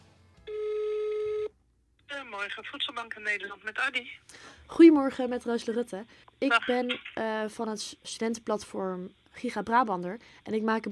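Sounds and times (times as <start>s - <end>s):
ringback tone of an outgoing phone call to a food bank: 0.5s - 1.5s
faint noise: 1.1s - 10.8s
speech: 2.4s - 10.8s.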